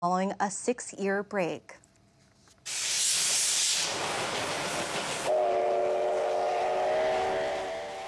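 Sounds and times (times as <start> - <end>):
speech: 0.0 - 1.8
C-57 steam locomotive hissing steam: 2.7 - 8.0.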